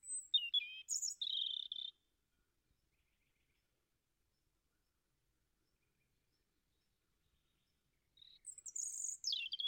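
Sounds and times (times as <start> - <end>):
European robin singing: 0.0 - 2.1, 5.7 - 9.6.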